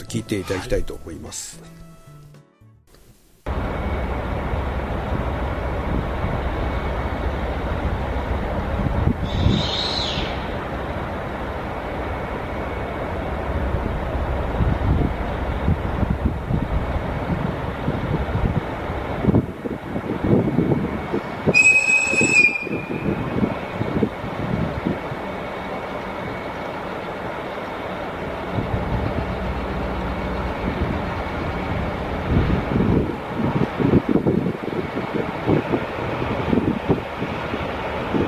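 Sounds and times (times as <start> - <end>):
speech: 0.1 - 1.9
sightseeing diesel train engine rumbling in the Kushiro Marsh area: 3.4 - 38.2
sightseeing diesel train whistle: 21.5 - 23.4.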